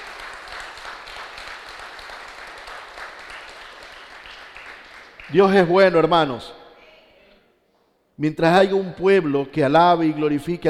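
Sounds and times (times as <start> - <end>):
congregation applauding: 0.0 - 5.7
speech: 5.3 - 6.6, 8.2 - 10.6.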